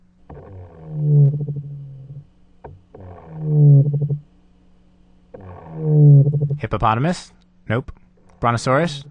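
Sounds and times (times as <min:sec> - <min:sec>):
amplified treehopper vibrational call: 0:00.0 - 0:04.4, 0:05.3 - 0:06.8
speech: 0:06.7 - 0:09.0.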